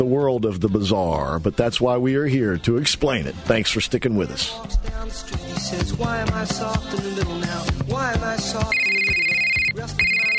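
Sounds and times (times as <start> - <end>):
speech: 0.0 - 10.3
telephone ringing with melodic ringtone and electronic trill: 8.7 - 10.3.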